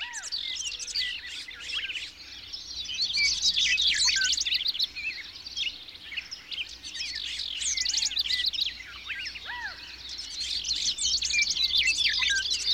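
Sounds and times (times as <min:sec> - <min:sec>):
dawn chorus of many birds singing: 0:00.0 - 0:12.7.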